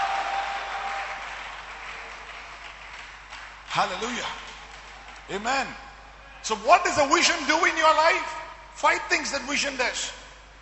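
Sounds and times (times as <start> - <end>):
large crowd applauding: 0.0 - 5.4
speech: 3.8 - 4.4, 5.3 - 10.2.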